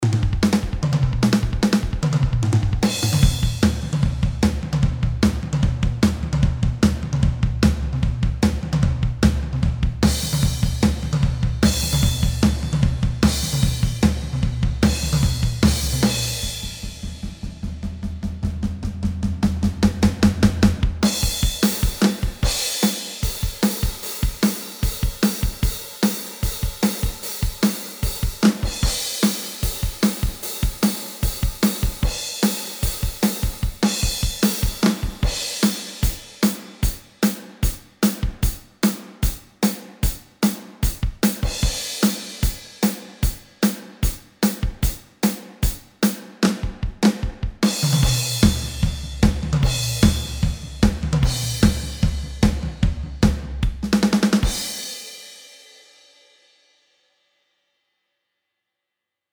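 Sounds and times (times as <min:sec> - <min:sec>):
power rock drums: 0:00.0 - 0:55.4.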